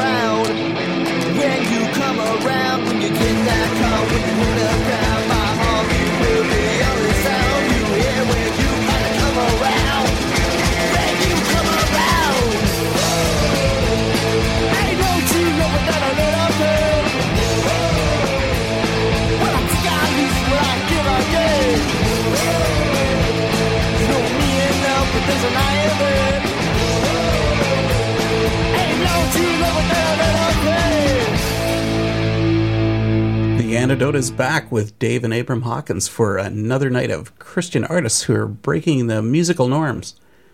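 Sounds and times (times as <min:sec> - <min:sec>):
old-school rock-and-roll punk song: 0:00.0 - 0:34.6
dense distorted guitars: 0:00.0 - 0:40.2
steady pounding drums: 0:03.2 - 0:31.9
speech: 0:34.2 - 0:40.3.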